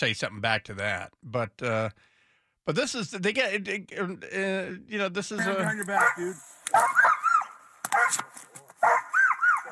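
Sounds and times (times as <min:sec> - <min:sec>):
speech: 0:00.0 - 0:07.0
dogs barking and yipping with high arching yelps: 0:05.9 - 0:09.6.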